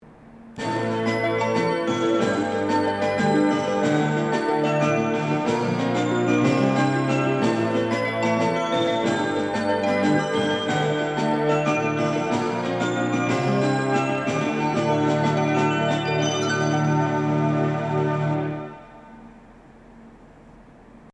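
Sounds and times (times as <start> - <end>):
departure melody at platform 13 of the Shinkansen platform at Chikugo-Funagoya: 0.0 - 21.1.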